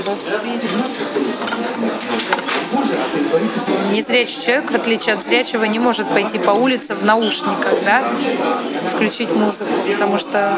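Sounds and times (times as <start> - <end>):
cutlery tapping on crockery: 0.0 - 3.1
dishes and spoons clinking in a busy cafe: 0.0 - 10.5
low murmur of indistinct voices in a cafe: 0.0 - 10.5
speech: 0.0 - 10.5.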